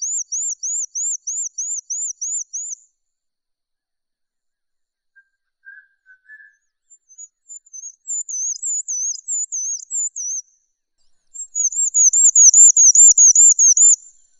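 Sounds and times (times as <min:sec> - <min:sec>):
bird singing high thin whistled phrases: 0:00.0 - 0:02.8, 0:05.2 - 0:10.5, 0:11.4 - 0:14.3.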